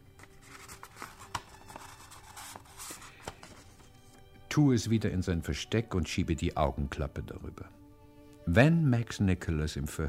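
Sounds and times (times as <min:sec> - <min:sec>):
sheet of paper being rolled up: 0:00.2 - 0:04.2
speech: 0:04.6 - 0:07.8, 0:08.5 - 0:10.0.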